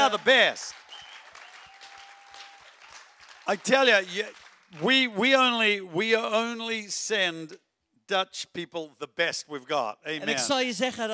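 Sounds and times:
speech: 0.0 - 0.8, 3.5 - 11.1
audience applauding with many hands clapping: 0.0 - 5.2.

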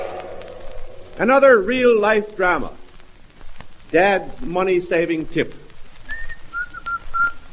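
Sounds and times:
speech: 1.2 - 2.8, 3.9 - 5.7
man whistling a tune: 6.1 - 7.5.

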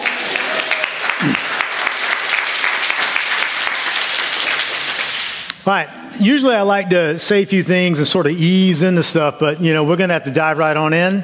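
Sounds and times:
large audience applauding: 0.0 - 5.5
speech: 5.6 - 11.2.

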